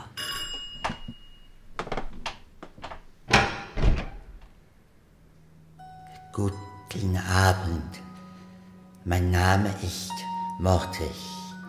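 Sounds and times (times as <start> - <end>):
bright doorbell ringing: 0.0 - 1.8, 5.8 - 6.9
dull door thumps and clunks: 0.8 - 4.6
speech: 6.4 - 8.1, 9.0 - 11.4.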